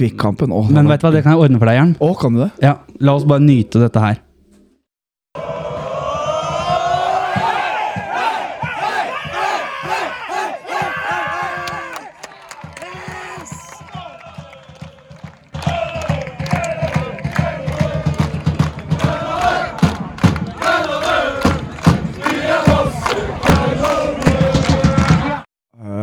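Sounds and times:
speech: 0:00.0 - 0:04.2
drummer pounding loud steady drums: 0:05.4 - 0:25.5
roaring chanting crowd: 0:05.4 - 0:25.5.

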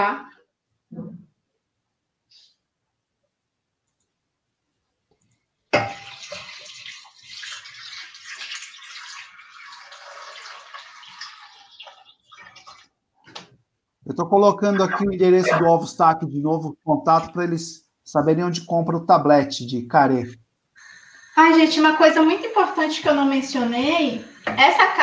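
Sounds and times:
water pouring into a cooking pot: 0:05.8 - 0:13.0
speech: 0:14.1 - 0:20.4, 0:21.4 - 0:25.0.

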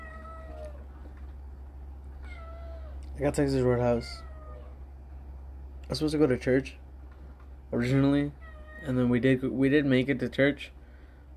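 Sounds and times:
agitated house cat meowing: 0:00.0 - 0:00.9, 0:02.2 - 0:03.0, 0:03.7 - 0:04.8, 0:08.4 - 0:09.0
steady low hum: 0:00.0 - 0:11.3
speech: 0:03.2 - 0:04.3, 0:05.9 - 0:06.8, 0:07.7 - 0:10.8.

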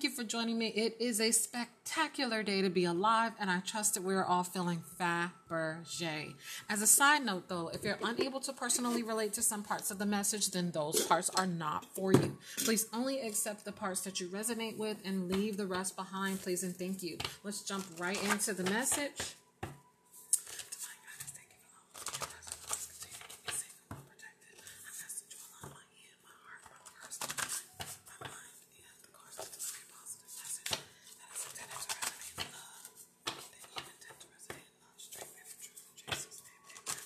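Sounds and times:
speech: 0:00.2 - 0:19.4
soft breathy whisper-like sounds: 0:06.3 - 0:06.8, 0:20.4 - 0:37.0
oracle cards shuffled in a jar: 0:17.2 - 0:19.3, 0:20.3 - 0:21.3, 0:22.0 - 0:23.8, 0:29.4 - 0:34.0, 0:35.1 - 0:37.0.

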